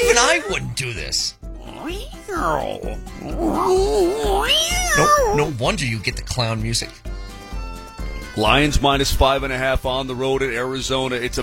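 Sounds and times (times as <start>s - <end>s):
speech: 0.2s - 7.1s, 8.4s - 11.4s
cat meowing and yowling: 1.6s - 5.5s.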